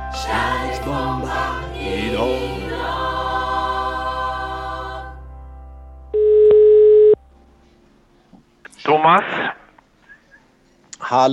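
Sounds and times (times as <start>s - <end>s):
speech: 0.3s - 3.0s, 9.0s - 9.6s, 11.1s - 11.3s
telephone ringback tone while a call is being placed: 6.2s - 7.2s.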